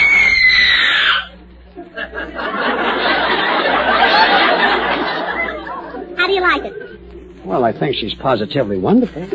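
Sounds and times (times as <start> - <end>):
woman screaming high-pitched: 0.0 - 1.3
audience laughter: 1.7 - 7.0
speech: 7.7 - 9.3.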